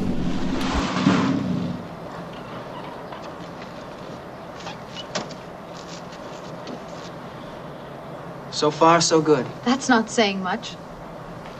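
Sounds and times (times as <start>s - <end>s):
car engine rumble while pulling up in front of a house: 0.0s - 8.2s
speech: 8.6s - 10.8s.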